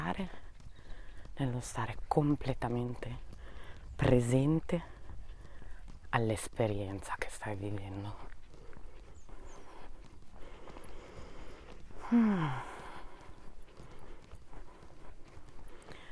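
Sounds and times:
soft footsteps of a person walking: 0.0 - 16.1
speech: 0.2 - 0.4, 1.4 - 3.3, 4.0 - 4.9, 6.1 - 8.4, 12.1 - 12.7
person murmuring: 12.0 - 12.9.

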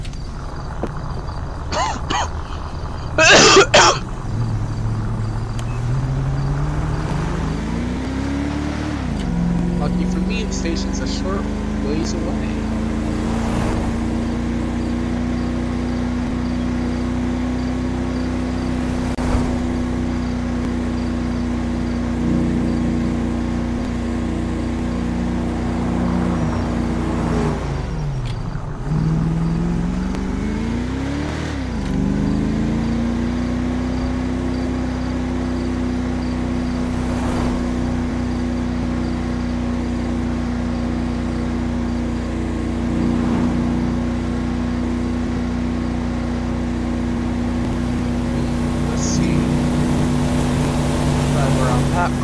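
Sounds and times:
police cruiser engine humming: 0.0 - 52.2.

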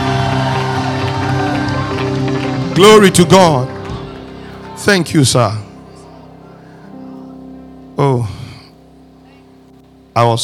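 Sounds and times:
large audience shouting and cheering: 0.0 - 7.5
speech: 2.8 - 3.8, 4.8 - 5.7, 8.0 - 8.4, 10.2 - 10.4.

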